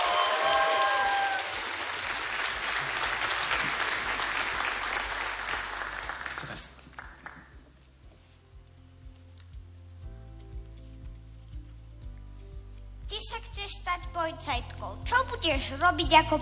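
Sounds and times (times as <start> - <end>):
audience applause: 0.0 - 7.7
music with a steady beat: 7.5 - 16.4
speech: 14.2 - 16.4.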